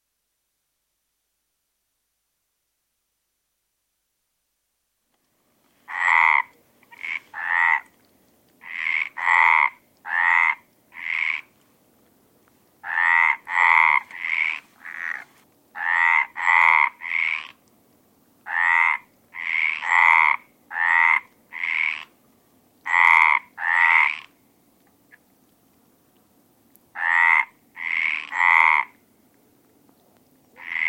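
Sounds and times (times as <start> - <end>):
Mediterranean tree frog: 5.8 - 8.0, 8.6 - 11.6, 12.8 - 17.7, 18.4 - 22.2, 22.8 - 24.4, 26.9 - 29.0, 30.5 - 30.8.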